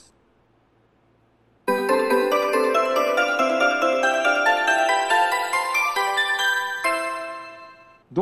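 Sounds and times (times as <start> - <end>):
melody: 1.7 - 8.0.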